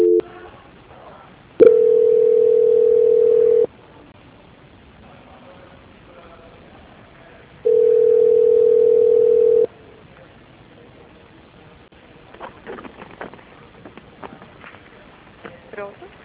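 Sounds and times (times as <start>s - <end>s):
telephone ringback tones while a call is transferred: 0.0s - 0.2s, 1.6s - 3.7s, 7.7s - 9.7s.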